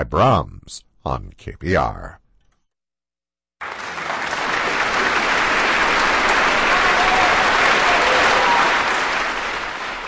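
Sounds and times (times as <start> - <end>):
speech: 0.0 - 2.2
concert audience applauding: 3.6 - 10.0.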